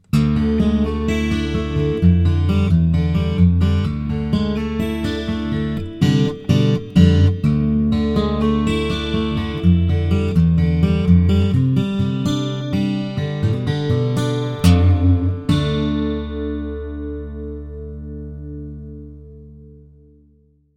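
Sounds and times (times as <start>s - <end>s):
fingerpicked acoustic western guitar with pickup, chorus and reverb: 0.0s - 20.2s.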